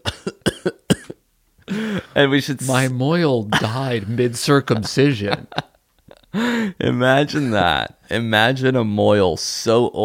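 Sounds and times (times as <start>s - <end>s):
harsh wheezy coughing: 0.0s - 2.0s
speech: 2.2s - 5.7s, 6.3s - 10.0s.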